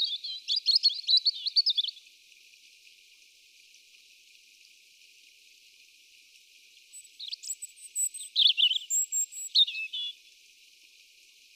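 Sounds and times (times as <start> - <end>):
European robin Erithacus rubecula song: 0.0 - 2.0, 6.9 - 10.2.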